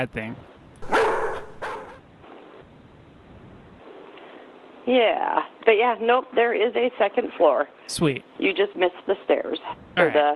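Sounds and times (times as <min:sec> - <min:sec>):
speech: 0:00.0 - 0:01.0, 0:04.8 - 0:10.3
dog barking: 0:00.8 - 0:02.0.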